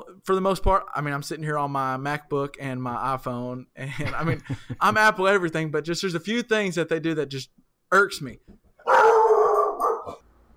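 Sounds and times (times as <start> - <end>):
speech: 0.2 - 9.0
laughter: 3.9 - 5.0
dog howling: 8.9 - 10.2.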